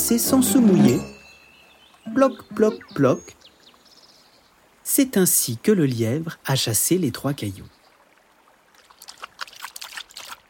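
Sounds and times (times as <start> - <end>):
speech: 0.1 - 1.2, 2.1 - 3.5, 4.9 - 7.8
tired sheepdog lapping water from a river: 8.7 - 10.4.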